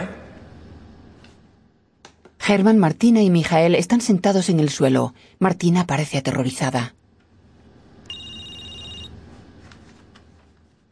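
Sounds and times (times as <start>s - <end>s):
speech: 2.4s - 7.0s
telephone ringing with an electronic trill: 8.0s - 9.2s.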